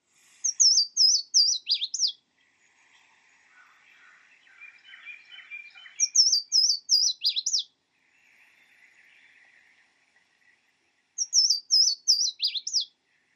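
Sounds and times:
Louisiana waterthrush soft chatter: 0.0 - 13.3
Louisiana waterthrush singing: 0.4 - 2.2, 4.4 - 7.7, 11.2 - 13.0.

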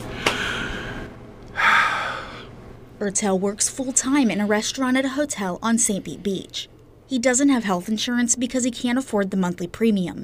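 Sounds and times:
60-year-old man taking a deep breath during a stethoscope lung exam: 0.0 - 2.6
speech: 3.0 - 10.2.

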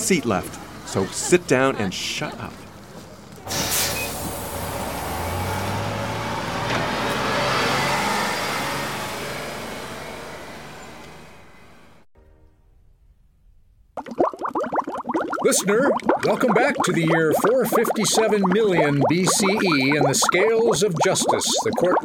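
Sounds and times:
bus engine running: 0.0 - 12.0
speech: 0.1 - 2.6, 15.5 - 22.0.

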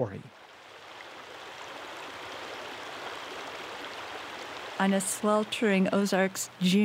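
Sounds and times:
speech: 0.0 - 0.4, 4.8 - 6.8
river water rushing over rocks: 0.4 - 5.4.

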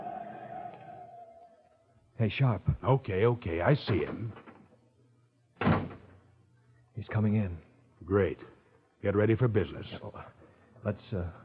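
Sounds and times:
speech: 2.2 - 4.4, 7.0 - 11.4
apartment door swinging shut with a solid thud: 5.6 - 6.1.

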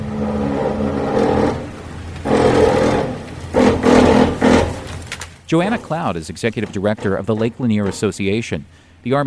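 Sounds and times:
heavy diesel backhoe engines dragging a houseboat along shore: 0.0 - 5.0
speech: 5.5 - 9.2.

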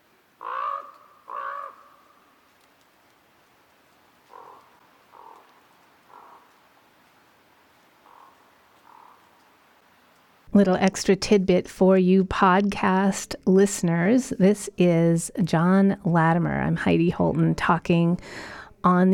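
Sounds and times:
common raven croaking: 0.3 - 2.3, 3.8 - 9.8
speech: 10.6 - 19.1.

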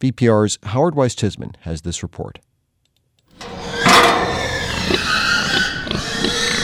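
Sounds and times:
speech: 0.0 - 2.5
pigs squealing and grunting at a slaughterhouse: 3.4 - 6.6
rumbling mechanical hum at a slaughterhouse: 3.4 - 6.6.

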